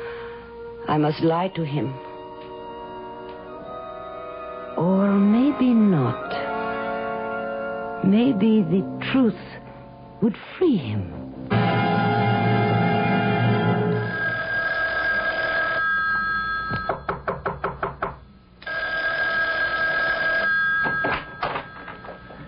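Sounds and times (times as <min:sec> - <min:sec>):
steady tonal hum: 0:00.0 - 0:17.2, 0:20.5 - 0:22.4
speech: 0:00.9 - 0:02.1, 0:04.8 - 0:06.5, 0:08.0 - 0:09.6, 0:10.2 - 0:11.6
telephone bell ringing: 0:14.0 - 0:17.1, 0:18.6 - 0:22.4.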